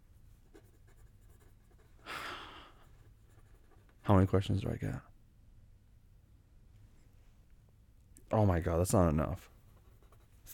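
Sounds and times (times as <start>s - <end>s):
pen drawing on paper: 0.5s - 2.0s, 3.0s - 4.0s, 9.7s - 10.5s
speech: 4.1s - 5.1s, 8.4s - 9.6s.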